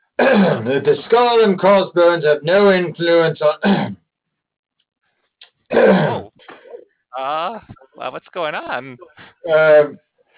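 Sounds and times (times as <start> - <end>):
throat clearing cough: 0.2 - 0.9, 3.6 - 4.0, 5.7 - 6.8
speech: 0.4 - 4.0, 5.7 - 6.2, 7.1 - 10.1.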